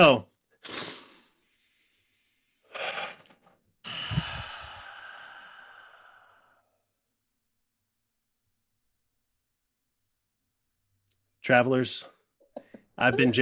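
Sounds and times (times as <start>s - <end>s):
speech: 0.0s - 0.9s, 11.5s - 12.1s, 13.0s - 13.4s
sharp inhales in deep breathing exercise: 0.6s - 6.8s
long drawn-out sighing exhale in deep breathing exercise: 3.8s - 6.7s.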